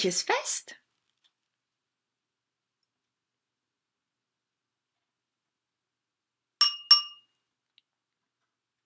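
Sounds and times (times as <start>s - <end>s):
speech: 0.0s - 0.8s
small bell ringing: 6.6s - 7.3s.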